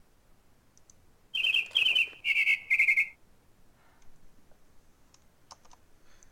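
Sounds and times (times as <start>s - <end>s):
bird call: 1.3s - 3.2s.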